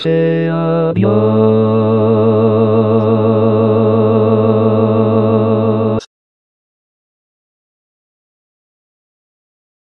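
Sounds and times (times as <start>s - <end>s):
bass playing a sevillana coda: 0.1s - 6.1s.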